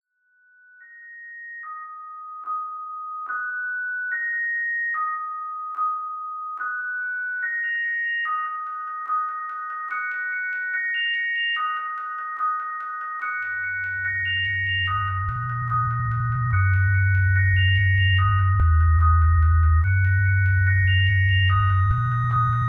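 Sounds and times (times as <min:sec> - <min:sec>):
sine wave tone: 0:00.1 - 0:22.6.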